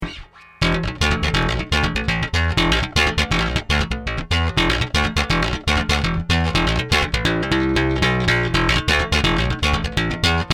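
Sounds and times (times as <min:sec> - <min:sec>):
effector bass: 0:00.0 - 0:10.5.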